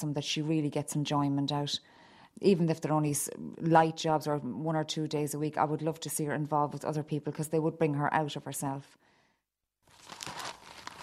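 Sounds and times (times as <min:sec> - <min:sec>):
speech: 0:00.0 - 0:09.1
pages of a newly bought local newspaper rustling as it is opened: 0:09.8 - 0:11.0.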